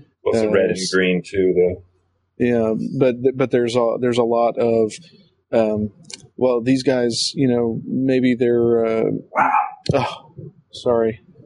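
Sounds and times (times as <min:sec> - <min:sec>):
speech: 0:00.3 - 0:11.2
pet dog barking with a whine-like bark: 0:09.4 - 0:09.8.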